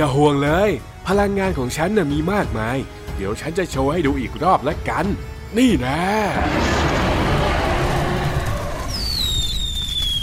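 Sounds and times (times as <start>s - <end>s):
speech: 0.0s - 6.8s
large fireworks crackling and rumbling: 6.5s - 10.2s
thin descending whistle: 8.3s - 10.2s.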